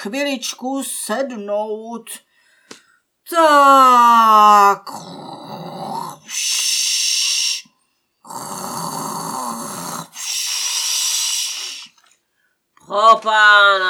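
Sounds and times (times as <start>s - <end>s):
speech: 0.0s - 7.0s, 12.9s - 13.8s
loud snoring: 4.9s - 6.3s, 8.2s - 11.9s.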